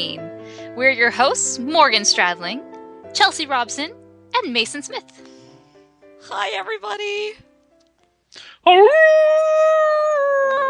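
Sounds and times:
speech: 0.0s - 5.3s, 6.2s - 7.5s, 8.3s - 9.8s
quick breathy intake: 8.3s - 8.6s
person imitating a wolf howl: 8.6s - 10.6s.

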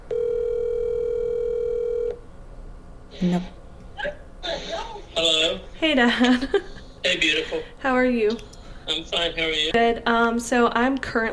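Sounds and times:
telephone ringback tone while calling a phone: 0.1s - 2.2s
speech: 3.2s - 4.2s, 5.2s - 11.3s.

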